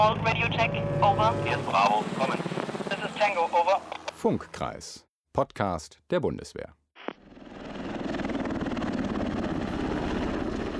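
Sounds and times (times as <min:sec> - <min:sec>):
speech: 0:00.0 - 0:02.6, 0:03.2 - 0:06.8
NH90 military helicopter rotor beat in flight: 0:00.0 - 0:04.6, 0:07.2 - 0:10.7.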